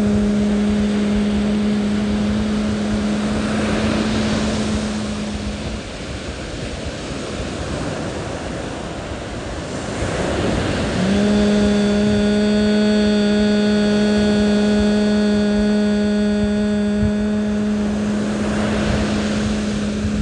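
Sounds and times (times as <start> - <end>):
person humming a long steady hum as a humming exercise: 0.0 - 6.0, 10.1 - 20.1
ocean waves breaking: 0.0 - 20.1.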